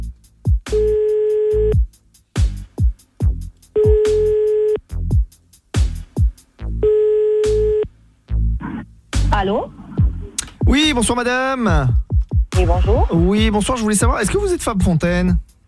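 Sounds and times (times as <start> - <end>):
rhythmic thumps: 0.0 - 6.8, 8.3 - 15.6
telephone ringback tone while a call is placed: 0.7 - 1.8, 3.8 - 4.8, 6.8 - 7.9
speech: 10.8 - 12.0, 12.6 - 15.5.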